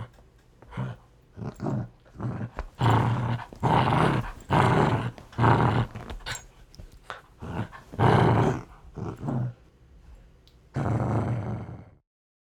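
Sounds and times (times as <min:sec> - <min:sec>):
dog growling: 0:00.0 - 0:09.6, 0:10.7 - 0:12.0.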